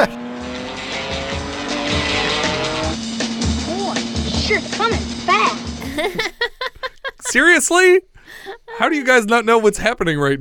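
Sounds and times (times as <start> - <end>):
car speeding down the road, engine roaring and revving: 0.0 - 5.8
car tires squealing: 0.0 - 5.8
speech: 4.5 - 10.4
laughter: 5.8 - 9.1.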